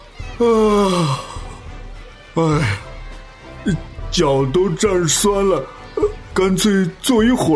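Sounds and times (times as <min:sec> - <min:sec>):
speech: 0:00.4 - 0:01.3, 0:02.4 - 0:02.9, 0:03.6 - 0:07.5
person yawning: 0:00.4 - 0:01.6.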